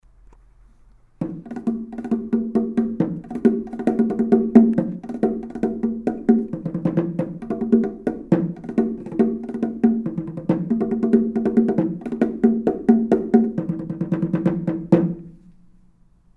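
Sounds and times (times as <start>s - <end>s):
bongo drums: 1.2s - 15.4s.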